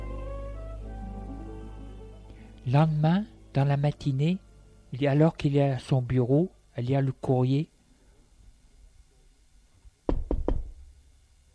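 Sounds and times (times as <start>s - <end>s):
speech: 2.6s - 7.7s
knocking on a door: 10.1s - 10.8s.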